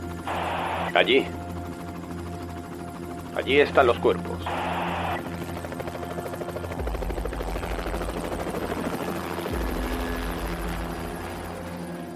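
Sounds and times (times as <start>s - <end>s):
helicopter rotor thumping while descending: 0.2s - 1.0s, 4.5s - 11.8s
deep helicopter engine drone: 0.2s - 1.6s, 4.4s - 5.5s, 6.7s - 12.1s
speech: 1.0s - 1.4s, 3.4s - 4.7s.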